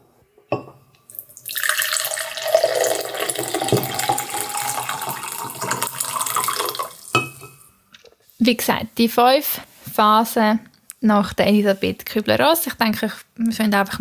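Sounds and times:
tea pouring into a cup: 1.1s - 7.4s
speech: 8.5s - 13.9s.

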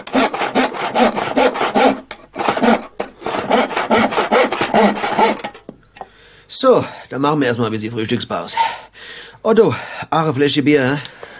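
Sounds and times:
hand saw cutting through wood in a carpentry workshop: 0.0s - 5.6s
speech: 6.6s - 11.1s.

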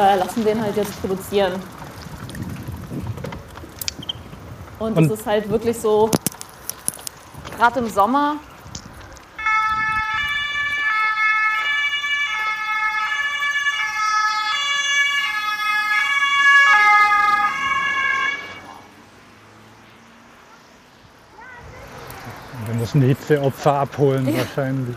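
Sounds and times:
speech: 0.0s - 1.8s, 4.8s - 6.3s, 7.6s - 8.5s, 23.0s - 24.9s
road noise: 0.0s - 24.9s
ambulance siren passing on the road: 9.4s - 19.0s.

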